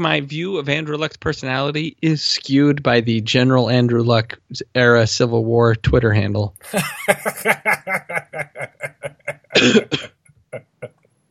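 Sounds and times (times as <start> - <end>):
speech: 0.0 - 10.1
laughter: 6.6 - 10.9
loud harsh cough: 9.3 - 10.8
short rhythmic breathy bursts: 9.4 - 10.1
faint throat catches: 9.5 - 10.9.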